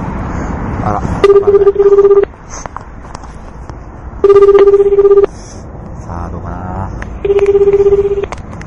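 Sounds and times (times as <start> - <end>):
speech: 0.9 - 2.7, 4.3 - 5.1
telephone ringback tone while a caller waits for an answer: 1.2 - 2.3, 4.2 - 5.3, 7.2 - 8.3.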